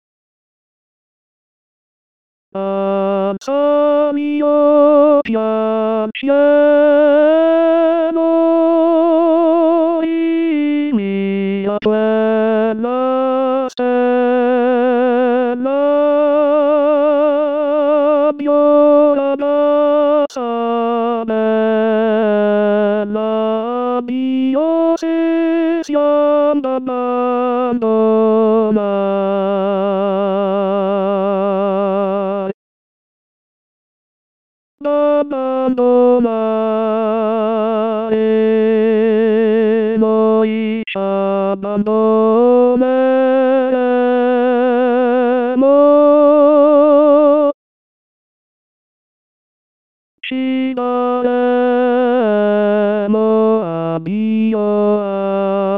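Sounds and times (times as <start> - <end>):
tenor singing solo: 2.6 - 32.6, 34.8 - 47.6, 50.2 - 55.7.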